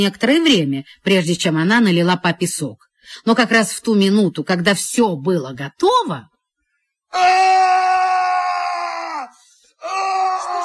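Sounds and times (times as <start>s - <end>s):
speech: 0.0s - 6.3s, 7.1s - 8.3s
man screaming: 7.1s - 10.6s.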